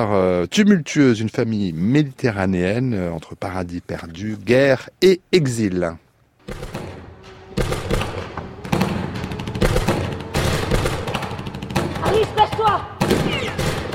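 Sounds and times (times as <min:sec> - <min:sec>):
speech: 0:00.0 - 0:06.8
gunshots: 0:06.4 - 0:13.9.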